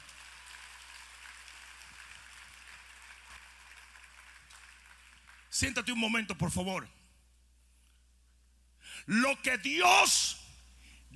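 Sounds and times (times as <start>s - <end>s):
audience applauding at a worship service: 0.0s - 5.8s
speech: 5.6s - 7.0s, 9.1s - 10.4s.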